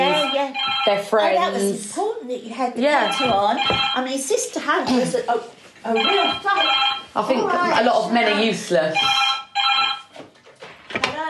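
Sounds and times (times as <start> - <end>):
telephone ringing: 0.0 - 1.1, 3.0 - 4.2, 6.0 - 7.2, 8.0 - 10.2
speech: 0.0 - 9.3.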